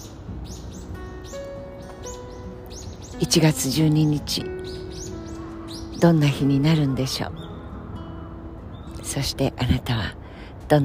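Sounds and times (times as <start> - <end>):
bird chirping in bright bursts of short rising notes: 0.0 - 9.4
speech: 3.2 - 4.6, 6.0 - 7.4, 9.2 - 10.8.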